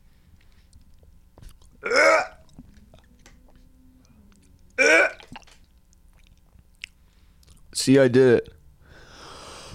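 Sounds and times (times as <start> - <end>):
person struggling to swallow dry food, gulping and gagging: 0.8 - 3.7, 4.3 - 7.6
speech: 7.9 - 8.6.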